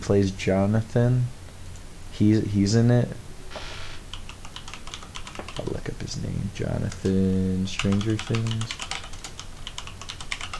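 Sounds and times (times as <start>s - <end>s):
speech: 0.0s - 1.4s, 2.2s - 3.3s, 6.6s - 8.8s
typing on a computer keyboard: 4.1s - 5.8s, 7.7s - 10.5s.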